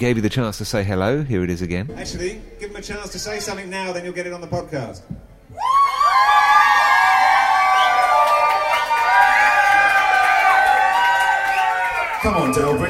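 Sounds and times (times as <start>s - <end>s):
speech: 0.0s - 5.3s, 12.2s - 12.8s
overlapping high-pitched yells and whoops: 5.5s - 12.6s
live audience cheering and shouting: 5.5s - 12.8s.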